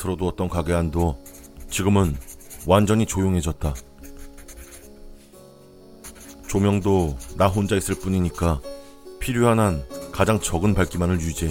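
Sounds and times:
speech: 0:00.0 - 0:03.9, 0:06.5 - 0:11.4
writing on paper inside a quiet shop: 0:00.9 - 0:05.3, 0:06.0 - 0:08.5, 0:10.0 - 0:11.4.

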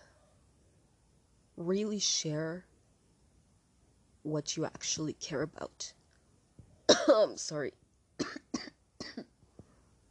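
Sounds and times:
speech: 0:01.6 - 0:02.7, 0:04.2 - 0:06.0, 0:06.9 - 0:08.4
harsh coughs: 0:06.9 - 0:07.3, 0:08.2 - 0:09.3.

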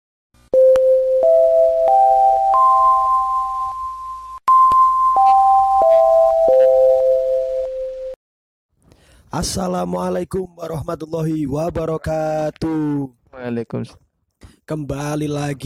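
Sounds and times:
school entrance bell electronic chime: 0:00.6 - 0:08.2
speech: 0:09.4 - 0:14.0, 0:14.7 - 0:15.6.

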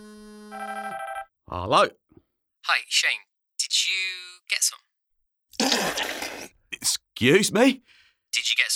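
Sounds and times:
mobile phone ringing with an electronic ringtone: 0:00.1 - 0:01.3
speech: 0:01.5 - 0:02.0, 0:02.6 - 0:04.9, 0:05.6 - 0:08.7.

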